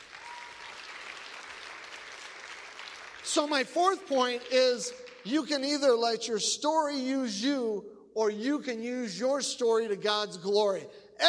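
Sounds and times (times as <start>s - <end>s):
audience applause: 0.0s - 5.2s
speech: 3.3s - 11.2s.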